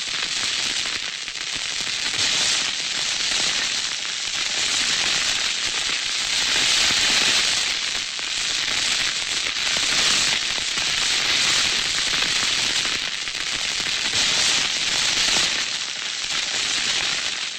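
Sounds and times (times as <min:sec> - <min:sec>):
fuses burning: 0:00.1 - 0:17.4.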